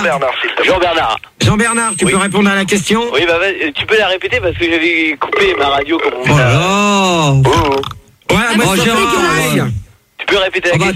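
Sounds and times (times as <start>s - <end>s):
speech: 0.0s - 10.9s
man burping: 7.4s - 8.0s.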